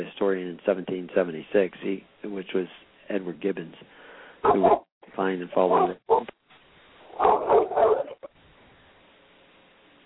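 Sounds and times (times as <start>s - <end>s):
speech: 0.0s - 6.4s
dog barking: 4.4s - 4.9s, 5.5s - 6.3s, 7.1s - 8.3s.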